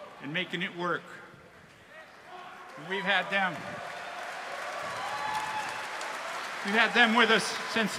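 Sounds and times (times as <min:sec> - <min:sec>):
speech: 0:00.2 - 0:01.3, 0:02.8 - 0:03.9, 0:06.6 - 0:07.9
loud whooping cheer: 0:02.3 - 0:07.9
audience applause: 0:02.6 - 0:07.9.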